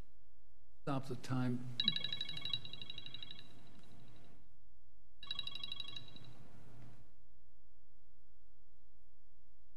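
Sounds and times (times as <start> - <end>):
speech: 0.9 - 2.2
mobile phone ringtone ringing: 1.8 - 3.6, 5.2 - 6.3.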